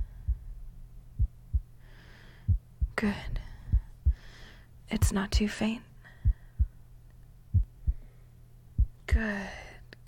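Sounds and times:
heartbeat heard through a chest: 0.0 - 1.8, 2.4 - 4.4, 6.2 - 6.8, 7.5 - 8.1, 8.7 - 9.2
speech: 3.0 - 3.4, 4.9 - 5.9, 9.2 - 9.6.

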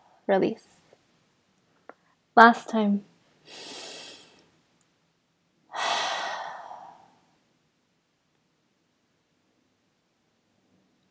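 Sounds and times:
speech: 0.3 - 0.8, 2.4 - 3.8
deep breath in and out through the mouth: 5.8 - 7.2.

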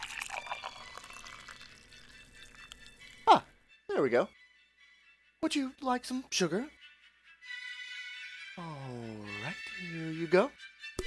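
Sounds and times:
tea pouring into a cup: 0.0 - 3.4
speech: 4.0 - 4.4, 5.4 - 6.8, 9.6 - 10.7.

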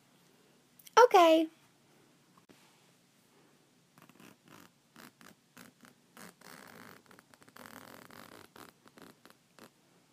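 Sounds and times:
speech: 1.1 - 1.6
clothing zipper being pulled open: 4.0 - 9.8.

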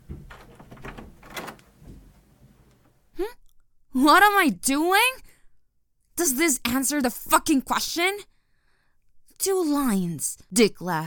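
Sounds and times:
door being forced open with rattling thumps and scraping: 0.0 - 3.0
speech: 3.2 - 3.4, 4.0 - 5.2, 6.2 - 8.3, 9.4 - 11.0.

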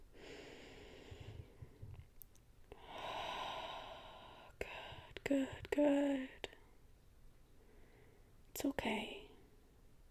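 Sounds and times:
slow deep breathing: 0.1 - 1.9, 2.8 - 5.1
speech: 4.6 - 6.4, 8.6 - 9.2.

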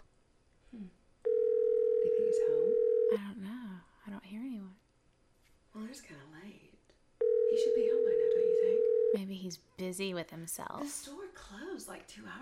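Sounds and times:
long steady ringback tone over the line: 1.3 - 3.2, 7.2 - 9.2
speech: 9.9 - 12.4.

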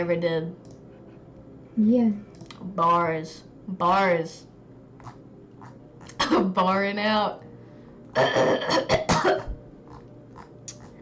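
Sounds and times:
speech: 0.0 - 0.7, 1.8 - 5.2, 6.3 - 7.5, 8.2 - 9.5
person coughing to clear something lodged in the throat: 6.2 - 6.5, 8.2 - 9.6.

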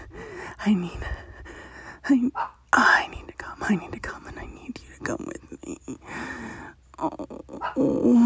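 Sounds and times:
speech: 0.7 - 1.2, 2.1 - 2.9, 3.7 - 4.1
dog growling, yelping and whimpering: 7.0 - 8.2.

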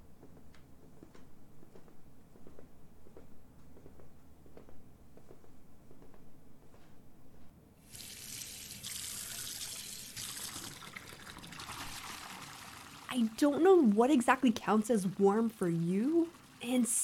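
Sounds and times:
bath tap gushing water filling a tub: 7.8 - 17.0
speech: 13.2 - 17.0.

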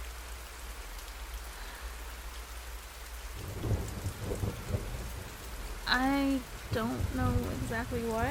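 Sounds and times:
storm rain hissing outside a patio door: 0.0 - 8.3
deep rumbling roll of thunder: 3.3 - 8.3
speech: 5.9 - 8.3.

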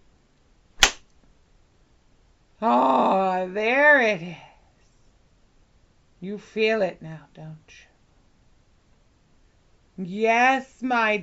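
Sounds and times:
whip crack: 0.8 - 1.1
speech: 2.6 - 4.4, 6.2 - 7.9, 10.0 - 11.2.

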